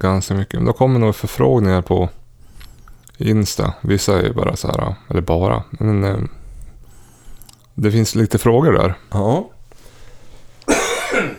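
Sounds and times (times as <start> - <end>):
speech: 0.0 - 2.2, 3.2 - 6.4, 7.8 - 9.6
harsh cough from a person with a lingering cough: 10.7 - 11.3.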